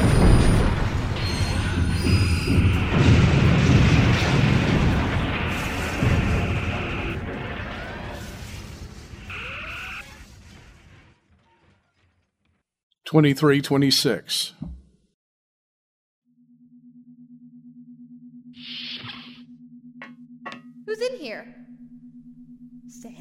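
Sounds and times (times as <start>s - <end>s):
ship's gun batteries returning fire: 0.0s - 11.4s
speech: 13.1s - 14.8s, 20.9s - 21.6s.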